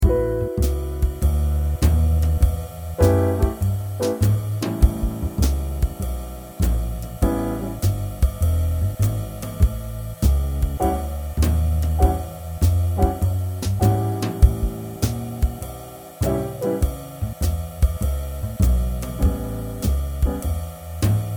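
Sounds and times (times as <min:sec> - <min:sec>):
jazz standard backing track in A7: 0:00.0 - 0:21.3.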